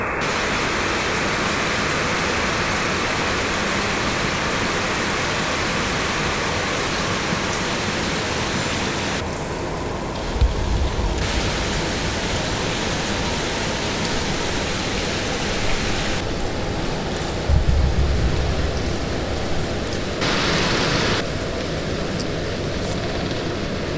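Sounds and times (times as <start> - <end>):
dense steady hiss with tonal shifts: 0.2 - 23.9
brief low thumps: 10.3 - 11.8, 17.5 - 20.4.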